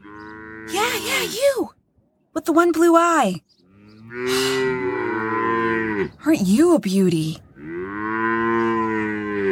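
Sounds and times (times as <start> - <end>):
cow mooing: 0.0 - 1.3, 3.6 - 6.2, 7.6 - 9.5
speech: 0.7 - 1.8, 2.4 - 3.5, 4.1 - 4.8, 6.2 - 7.4.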